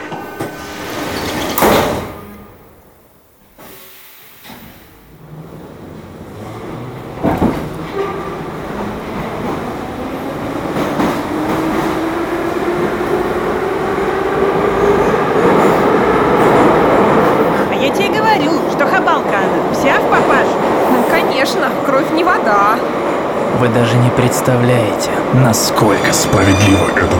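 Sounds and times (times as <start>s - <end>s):
metro carriage doors sliding and thumping shut: 0.0s - 5.1s, 6.4s - 17.6s
metro train electric motor whine and rumbling wheels pulling away: 0.0s - 27.1s
speech: 24.4s - 27.1s.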